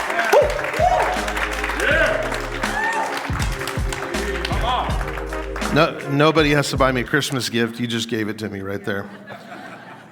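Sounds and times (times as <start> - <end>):
audience clapping: 0.0 - 7.1
speech: 5.8 - 9.4
laughter: 8.8 - 10.1.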